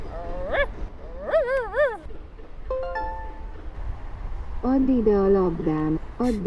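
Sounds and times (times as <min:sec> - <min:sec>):
person imitating a dog with whiny yelps and whimpers: 0:00.0 - 0:02.1
speech: 0:04.7 - 0:06.4.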